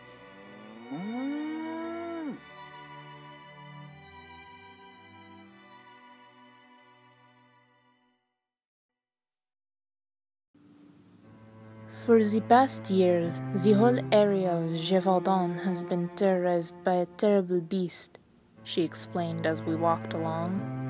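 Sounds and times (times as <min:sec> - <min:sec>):
cow mooing while being herded: 0:00.4 - 0:02.5
speech: 0:12.0 - 0:20.8.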